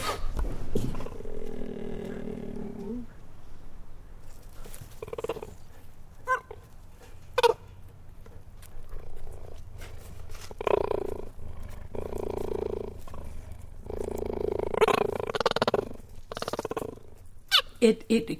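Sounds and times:
cheetah growling and purring: 0.0 - 3.3, 4.6 - 6.6, 8.2 - 17.3
speech: 17.8 - 18.3.

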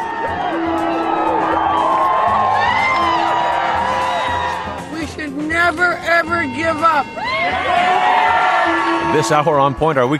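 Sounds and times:
dense welcoming crowd cheering and whooping on a beach in Florida: 0.0 - 5.0, 7.0 - 10.1
speech: 6.2 - 8.0, 8.7 - 10.1.

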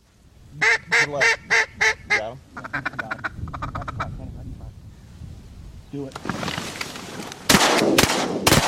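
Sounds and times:
duck call quacking during a duck hunt in southern Illinois: 0.6 - 4.2
shotgun blasts during a duck hunt in southern Illinois: 7.5 - 8.6.

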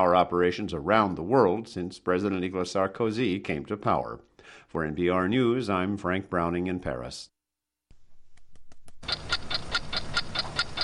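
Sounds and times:
speech: 0.0 - 7.3, 9.0 - 9.3
clock ticking: 9.0 - 10.8.

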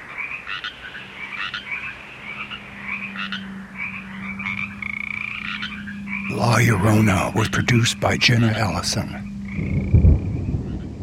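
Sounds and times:
steady hiss of stormy weather: 0.0 - 11.0
thunder rumbling: 6.2 - 11.0
speech: 6.6 - 9.3.

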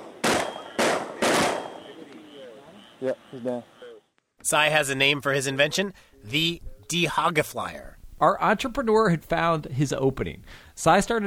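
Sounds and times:
high-powered rifle shots fired at a wild hog in a field: 0.0 - 2.4
speech: 3.0 - 3.8, 4.4 - 11.2.

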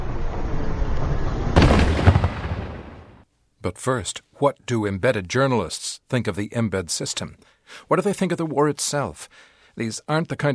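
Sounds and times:
loud explosion in a war zone: 0.0 - 3.2
speech: 3.6 - 10.5.

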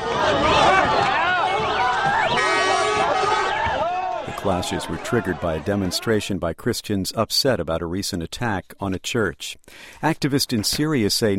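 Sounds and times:
dense crowd shouting during attack on a car in Cairo, Egypt: 0.0 - 6.2
speech: 4.5 - 11.3.

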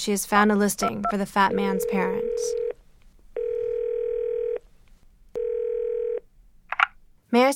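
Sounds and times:
speech: 0.0 - 2.6, 7.3 - 7.5
telephone dial tone: 0.8 - 2.8, 3.4 - 4.6, 5.4 - 6.2.

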